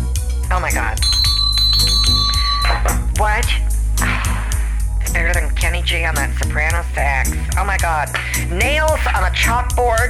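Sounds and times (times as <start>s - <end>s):
steady bass-heavy music: 0.0s - 10.0s
speech: 0.6s - 1.2s, 2.8s - 3.7s, 5.1s - 10.0s
hand bell ringing rapidly: 1.0s - 2.8s.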